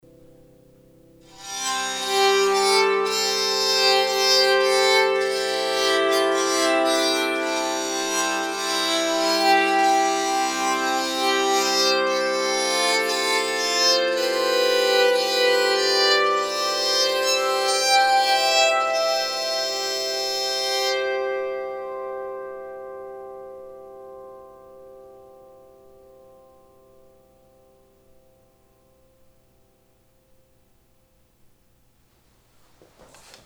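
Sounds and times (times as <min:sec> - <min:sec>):
aspen baritone bowed psaltery tune: 0:01.2 - 0:22.4.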